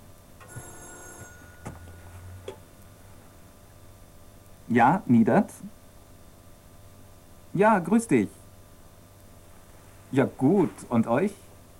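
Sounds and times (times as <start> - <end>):
telephone ringing: 0.4 - 2.5
speech: 4.7 - 5.8, 7.6 - 8.4, 10.1 - 11.4.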